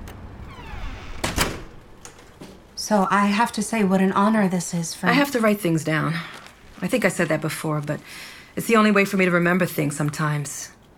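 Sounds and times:
door being shut: 0.0 - 2.4
speech: 2.8 - 10.8.

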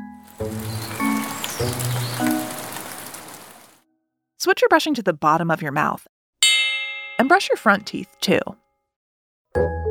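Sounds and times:
rain falling: 0.0 - 3.8
speech: 0.4 - 0.7, 4.4 - 6.2, 7.2 - 8.6.

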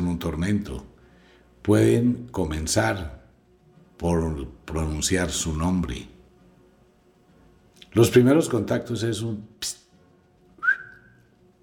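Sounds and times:
faint low background: 0.0 - 11.6
speech: 0.2 - 0.9, 1.6 - 3.2, 4.0 - 6.2, 7.9 - 9.8
person whistling a clear rising note: 10.6 - 11.3.

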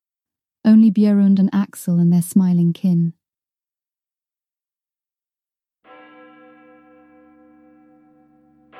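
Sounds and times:
speech: 0.6 - 3.2
deep night bell tolling: 5.9 - 8.7.

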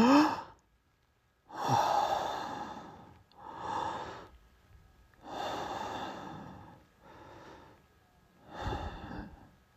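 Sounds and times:
slow deep breaths at the start of a guided meditation: 1.5 - 4.5, 5.2 - 9.7.

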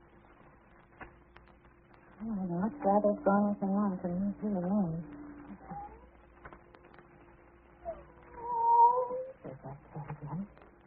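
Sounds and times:
low steady hum: 0.0 - 10.8
speech: 2.2 - 5.2
cat caterwauling: 5.5 - 6.1, 7.8 - 9.4.

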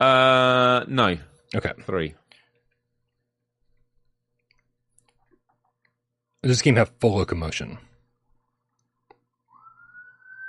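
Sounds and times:
low hum: 0.0 - 10.4
speech: 0.9 - 2.3, 6.4 - 7.9
emergency siren wailing: 9.4 - 10.4.

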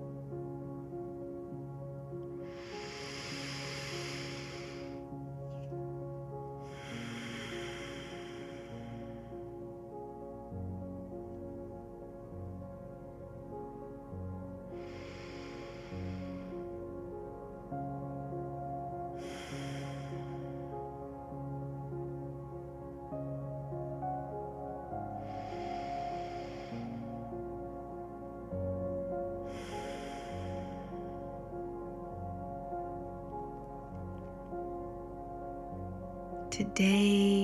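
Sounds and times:
soft steady musical drone: 0.0 - 37.4
deep breaths in and out: 0.7 - 36.5
speech: 36.6 - 37.4.

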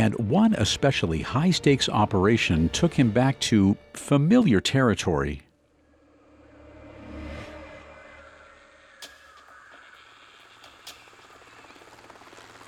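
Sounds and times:
speech: 0.0 - 5.4
helicopter landing gently in grass in Vietnam: 8.2 - 12.6.

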